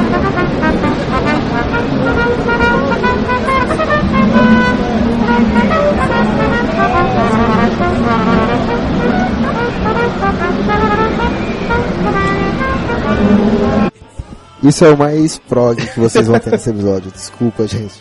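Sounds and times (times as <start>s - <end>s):
man playing a bugle: 0.0s - 13.9s
faint chatter: 0.0s - 17.9s
speech: 14.6s - 17.9s
laughter: 15.7s - 17.0s.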